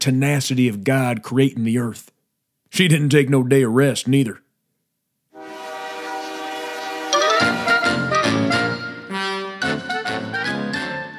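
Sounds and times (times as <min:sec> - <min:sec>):
speech: 0:00.0 - 0:04.4
train horn blasts: 0:05.4 - 0:09.7.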